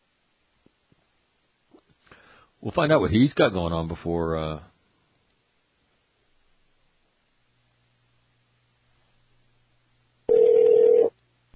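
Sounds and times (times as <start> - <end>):
speech: 2.6 - 4.7
telephone ringback tone of an outgoing call: 10.3 - 11.1.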